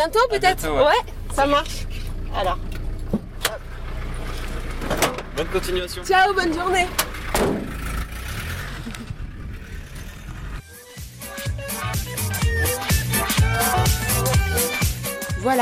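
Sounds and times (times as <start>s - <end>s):
speech: 0.0s - 2.7s, 4.9s - 7.6s
truck engine rumbling and pulling away: 0.0s - 15.5s
rhythmic tonal music: 10.6s - 15.5s.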